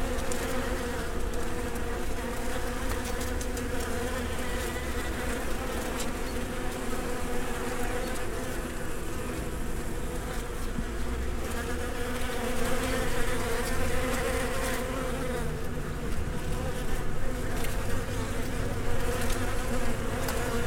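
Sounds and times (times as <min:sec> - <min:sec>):
bees buzzing in a dense steady drone: 0:00.0 - 0:20.6.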